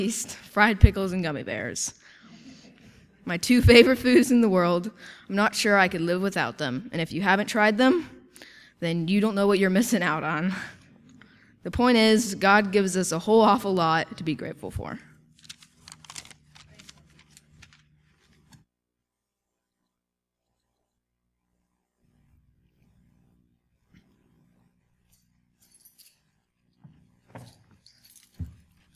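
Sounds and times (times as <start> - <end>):
speech: 0.0 - 2.0, 3.2 - 10.8, 11.6 - 15.1
keys jangling while someone walks: 25.1 - 26.5, 27.4 - 28.9.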